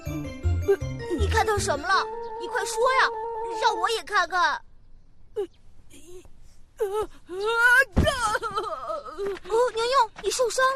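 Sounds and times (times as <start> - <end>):
speech: 0.1 - 4.7, 5.4 - 5.6, 6.2 - 10.7
young voice crying and sobbing: 0.6 - 4.1, 5.4 - 9.7.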